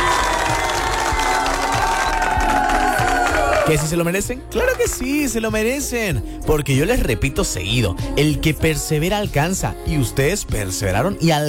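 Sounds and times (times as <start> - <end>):
crowd applause: 0.0 - 3.9
speech: 3.7 - 11.4.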